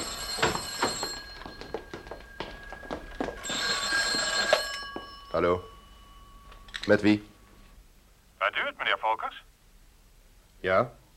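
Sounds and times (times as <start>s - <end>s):
telephone bell ringing with a metallic jangle: 0.0s - 7.6s
speech: 5.4s - 5.7s, 6.8s - 7.3s, 8.5s - 9.5s, 10.6s - 11.0s.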